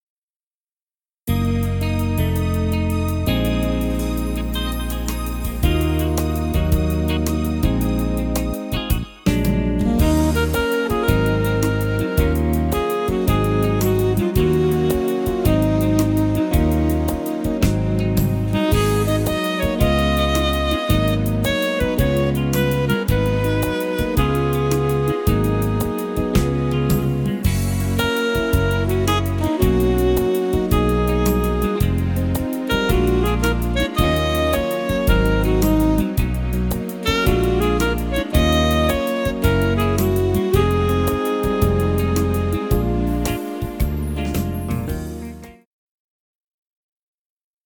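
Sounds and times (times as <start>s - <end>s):
randomly panned clarinet: 1.3s - 45.3s.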